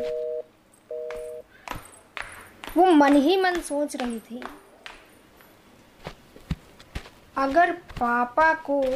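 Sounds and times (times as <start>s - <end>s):
mobile phone call ringing tone: 0.0s - 1.4s
speech: 2.8s - 4.6s, 7.4s - 8.9s.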